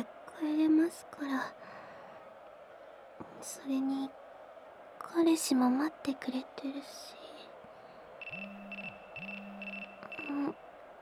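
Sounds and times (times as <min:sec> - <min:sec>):
speech: 0:00.4 - 0:01.6, 0:03.4 - 0:04.2, 0:05.0 - 0:07.2, 0:08.3 - 0:08.6
low buzzing hum: 0:08.2 - 0:10.6
phone ringing with short electronic tone bursts: 0:08.2 - 0:10.6.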